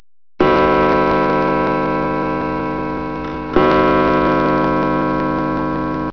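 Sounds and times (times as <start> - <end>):
old clock: 0.4 - 6.1.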